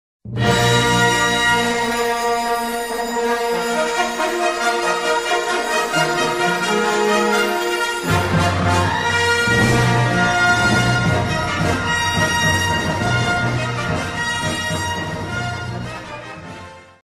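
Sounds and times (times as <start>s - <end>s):
stage opening music: 0.3s - 16.2s.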